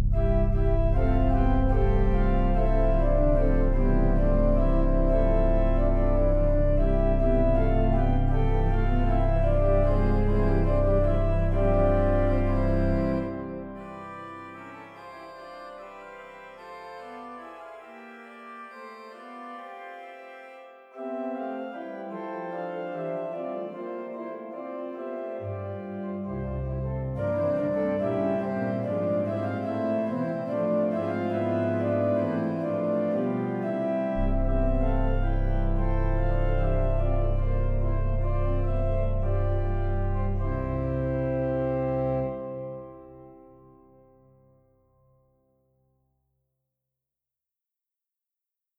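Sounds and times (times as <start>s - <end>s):
grand pipe organ playing a hymn: 0.1s - 44.0s.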